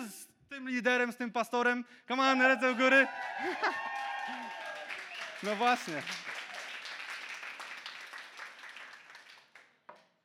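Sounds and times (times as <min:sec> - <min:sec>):
speech: 0:00.6 - 0:04.6, 0:05.4 - 0:06.3
congregation clapping hands: 0:02.4 - 0:10.0.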